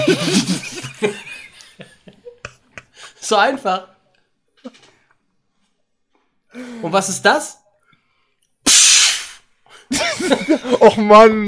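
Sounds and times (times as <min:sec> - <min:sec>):
laughter: 0:00.0 - 0:03.2, 0:09.9 - 0:11.2
speech: 0:00.1 - 0:01.2, 0:03.3 - 0:04.0, 0:06.5 - 0:07.6, 0:09.9 - 0:11.4
pneumatic hiss of a looping roller coaster brake releasing in a tunnel: 0:08.7 - 0:09.4.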